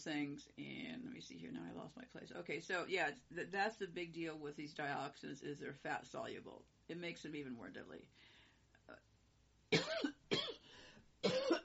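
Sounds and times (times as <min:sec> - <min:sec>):
speech: 0:00.0 - 0:08.3, 0:08.9 - 0:09.1
harsh rasping coughs: 0:09.8 - 0:11.6.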